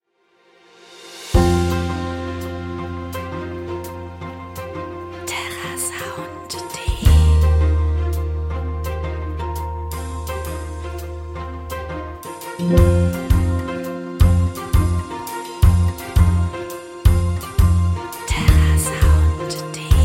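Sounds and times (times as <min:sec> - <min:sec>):
motivational business theme music: 0:01.3 - 0:20.0.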